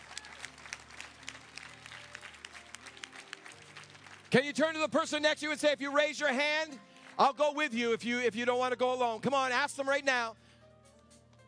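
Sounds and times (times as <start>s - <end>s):
congregation clapping hands in applause: 0.0s - 5.2s, 6.3s - 7.8s
speech: 4.3s - 10.4s.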